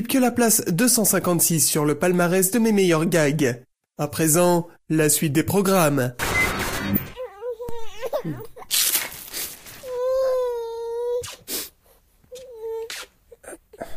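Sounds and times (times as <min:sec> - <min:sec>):
speech: 0:00.0 - 0:06.2
baby crying: 0:07.1 - 0:08.8, 0:09.8 - 0:11.5, 0:12.3 - 0:13.9.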